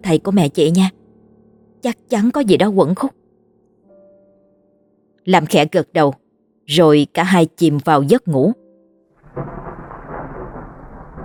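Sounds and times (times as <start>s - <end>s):
speech: 0.0s - 1.0s, 1.8s - 3.2s, 5.2s - 8.6s
thunder rumbling during a night storm: 9.2s - 11.2s.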